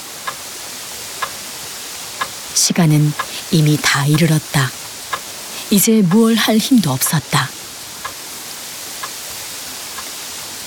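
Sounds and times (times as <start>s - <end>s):
soft hiss of noise: 0.0s - 10.6s
clock second hand ticking: 2.2s - 8.2s
speech: 2.6s - 4.8s, 5.7s - 7.6s.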